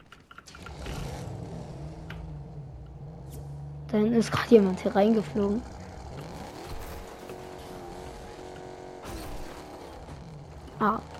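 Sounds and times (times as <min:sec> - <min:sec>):
video game car engine roaring: 0:00.0 - 0:11.1
speech: 0:03.9 - 0:05.8, 0:10.8 - 0:11.1.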